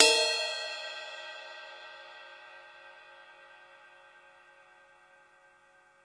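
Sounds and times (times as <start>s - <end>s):
ride cymbal in stereo: 0.0s - 2.2s.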